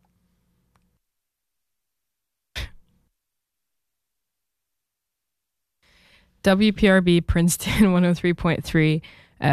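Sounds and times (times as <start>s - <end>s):
single sharp cough: 2.6s - 2.8s
speech: 6.4s - 9.5s.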